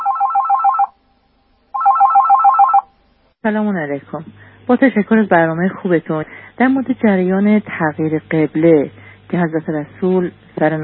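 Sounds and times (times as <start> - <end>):
telephone ringing with a rapid warbling burst: 0.0 - 1.0, 1.8 - 2.9
speech: 3.4 - 10.8.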